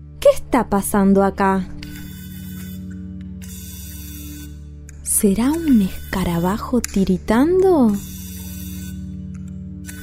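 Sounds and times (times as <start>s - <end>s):
speech: 0.2s - 1.8s, 5.2s - 8.1s
digital camera lens motor whirring: 1.8s - 4.6s, 5.4s - 6.5s, 7.9s - 10.0s.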